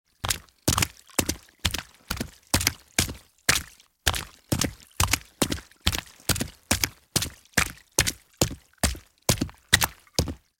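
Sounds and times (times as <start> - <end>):
shoes walking fast on a wet street: 0.2 - 10.4.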